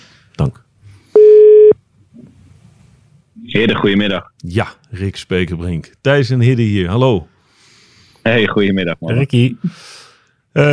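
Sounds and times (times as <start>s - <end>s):
speech: 0.4s - 0.6s, 3.4s - 7.3s, 8.2s - 10.7s
telephone tone while dialing: 1.2s - 1.8s.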